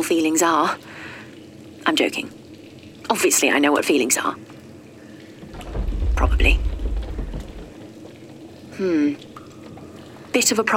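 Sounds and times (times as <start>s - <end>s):
speech: 0.0s - 1.0s, 1.8s - 2.4s, 3.0s - 4.5s, 6.2s - 6.7s, 8.8s - 9.3s, 10.3s - 10.7s
water trickling and gurgling as it leaks into a tunnel: 0.0s - 10.7s
loud metallic groan sliding downward: 5.4s - 7.8s.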